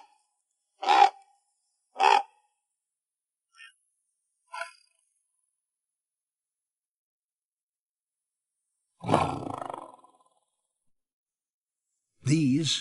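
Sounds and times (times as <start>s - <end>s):
Siberian tiger roaring: 9.0s - 10.4s
speech: 12.3s - 12.7s.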